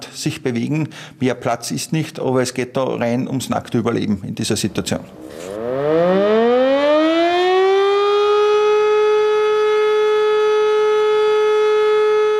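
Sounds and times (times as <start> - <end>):
speech: 0.2 - 6.3
civil defense warning siren during test alarm: 5.1 - 12.3.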